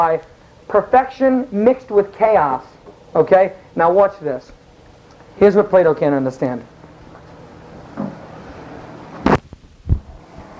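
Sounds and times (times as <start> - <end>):
speech: 0.0 - 4.6, 5.4 - 6.7
chair scraping across a hard floor: 7.2 - 9.4.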